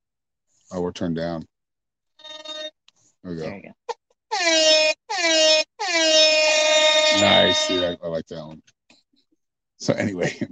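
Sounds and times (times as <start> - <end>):
speech: 0.7 - 1.5, 3.2 - 3.8, 4.4 - 8.8, 9.8 - 10.5
loud air horn blasts: 4.3 - 8.0
laughter: 9.8 - 10.5.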